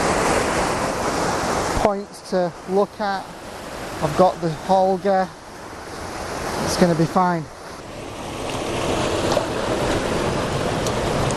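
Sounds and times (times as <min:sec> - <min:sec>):
waterfall with fast-running water over rapids: 0:00.0 - 0:11.3
speech: 0:01.8 - 0:03.4, 0:04.0 - 0:05.4, 0:06.7 - 0:07.6.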